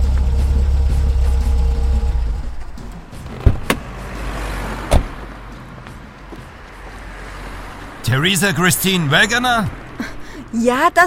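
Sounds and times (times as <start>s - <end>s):
car engine rumble as car comes to a stop: 0.0s - 11.0s
thump: 3.3s - 3.8s, 4.9s - 5.2s
speech: 8.2s - 11.0s.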